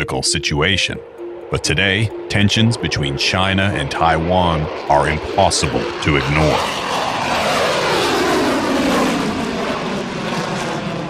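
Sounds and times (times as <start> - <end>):
speech: 0.1 - 7.0
F-16 fighter jets roaring overhead: 2.4 - 11.0.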